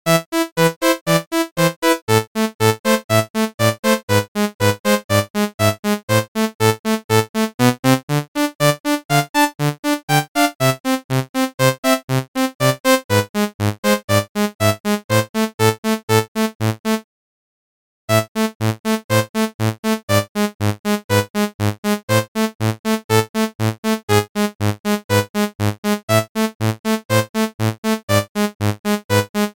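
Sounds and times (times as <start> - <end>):
midi game music: 0.1 - 17.0, 18.1 - 29.5.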